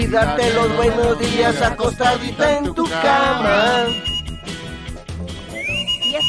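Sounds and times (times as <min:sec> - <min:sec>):
speech: 0:00.1 - 0:04.1
person whistling: 0:03.6 - 0:04.5, 0:05.5 - 0:06.2.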